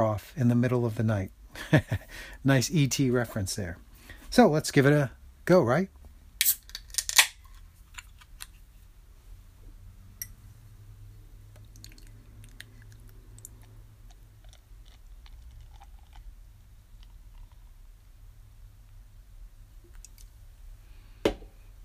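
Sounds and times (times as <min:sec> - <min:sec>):
speech: 0:00.0 - 0:06.6
beer can opening with a sharp crack and hiss: 0:06.4 - 0:07.4
beer pouring from a can with a low gurgling rush: 0:14.0 - 0:17.8.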